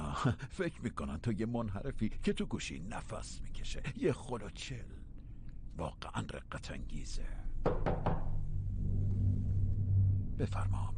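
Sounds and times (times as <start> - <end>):
low steady hum: 0.0 - 10.9
speech: 0.2 - 5.0, 5.8 - 8.2, 10.4 - 10.9
knocking on a door: 7.6 - 8.4.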